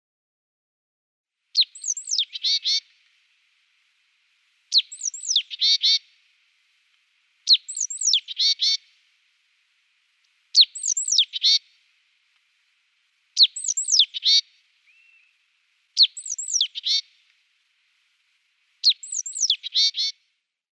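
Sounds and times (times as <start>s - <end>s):
great tit calling: 1.6s - 2.9s, 4.7s - 6.1s, 7.4s - 8.9s, 10.5s - 11.7s, 13.4s - 15.4s, 16.0s - 17.2s, 18.8s - 20.2s.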